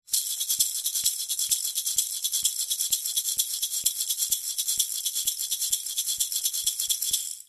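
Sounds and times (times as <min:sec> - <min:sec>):
maracas shaker played by kids: 0:00.0 - 0:07.4.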